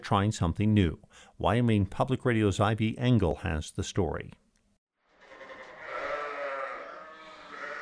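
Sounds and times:
speech: 0.1s - 4.4s
several female Rambouillet sheep bleating on pastures: 5.2s - 7.8s.

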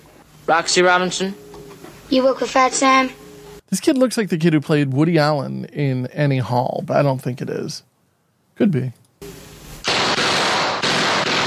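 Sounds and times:
speech: 0.5s - 1.4s, 2.1s - 7.9s, 8.6s - 9.4s
guns firing in a film scene: 9.8s - 11.4s.

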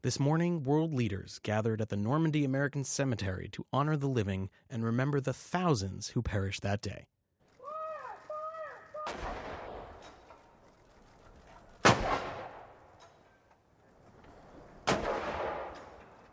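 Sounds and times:
speech: 0.0s - 7.2s
rifle volleys of a gun salute at a Normandy military cemetery: 7.4s - 13.5s, 14.3s - 16.3s
person shouting a command: 7.6s - 9.2s.

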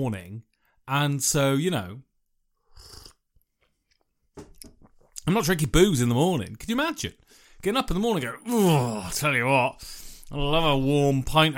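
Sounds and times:
speech: 0.0s - 2.1s, 5.2s - 11.5s
noisy slurp of hot tea: 2.6s - 3.3s
swallowing gulp: 2.6s - 5.2s.

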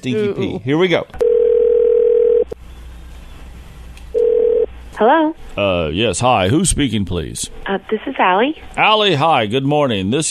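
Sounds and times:
speech: 0.0s - 1.2s, 5.0s - 10.2s
telephone line ringback tone: 1.2s - 2.6s, 4.2s - 4.7s.

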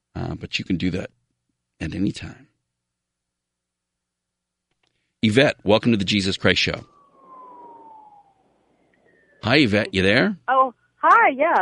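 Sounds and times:
speech: 0.4s - 1.2s, 1.8s - 2.5s, 5.2s - 7.0s, 9.4s - 11.5s
ambulance siren passing by: 5.7s - 10.2s.

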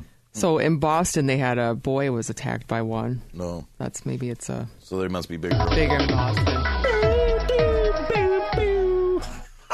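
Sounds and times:
speech: 0.4s - 7.0s
news jingle with synth-brass notes: 5.4s - 8.9s.

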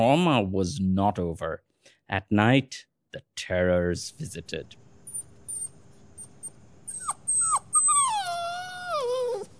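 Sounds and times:
speech: 0.0s - 4.8s
puppy long wavering whine sliding downward in pitch: 5.1s - 9.5s.

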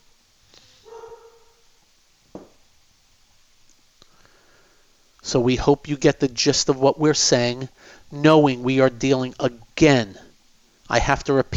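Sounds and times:
dog giving a drawn-out whiny yelp: 0.8s - 1.6s
dogs barking: 0.8s - 1.7s
speech: 5.3s - 10.2s, 10.9s - 11.5s.

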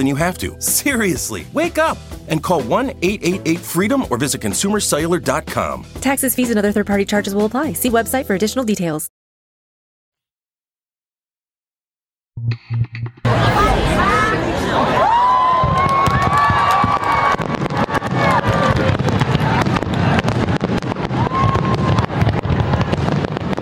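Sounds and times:
speech: 0.0s - 9.1s
crowd cheering and whistling: 13.3s - 18.8s, 21.2s - 22.2s
fireworks bursts crackling: 15.1s - 23.6s.

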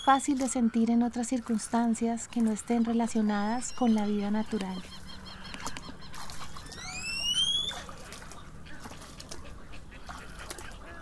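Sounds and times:
rising whistled waterbird cries: 0.0s - 0.3s, 3.6s - 4.0s, 6.6s - 7.9s
speech: 0.0s - 5.0s
waterbirds calling outdoors at a bird sanctuary: 0.0s - 10.9s.

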